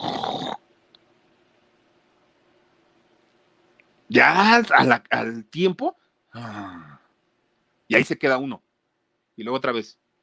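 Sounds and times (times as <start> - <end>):
person imitating sleep apnea snoring with a rough rasping snort: 0.0 - 0.6
speech: 4.1 - 6.9, 7.9 - 8.6, 9.4 - 10.0.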